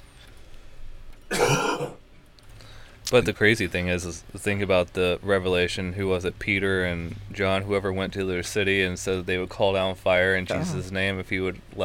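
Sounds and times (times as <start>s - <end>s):
person coughing: 1.3s - 2.0s
speech: 3.1s - 11.8s.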